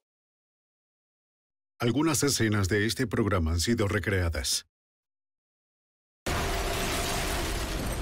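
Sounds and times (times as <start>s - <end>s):
speech: 1.8s - 4.7s
loud explosion: 6.3s - 8.0s.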